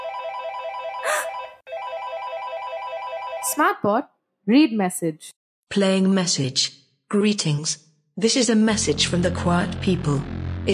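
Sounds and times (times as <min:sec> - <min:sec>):
telephone ringing with a steady electronic tone: 0:00.0 - 0:03.6
speech: 0:03.6 - 0:10.7.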